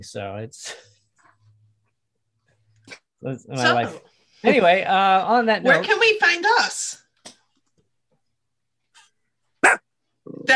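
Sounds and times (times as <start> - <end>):
speech: 0.0 - 0.9, 2.9 - 7.0, 10.4 - 10.5
dog barking: 9.6 - 9.9.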